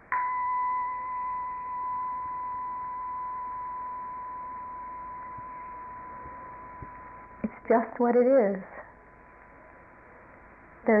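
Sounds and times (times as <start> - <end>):
bell ringing: 0.0 - 7.9
speech: 7.7 - 8.7.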